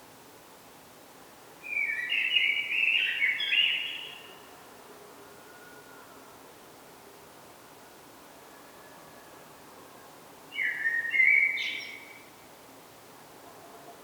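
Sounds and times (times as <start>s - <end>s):
Common blackbird song, Turdus merula: 1.6s - 4.4s, 10.5s - 12.3s.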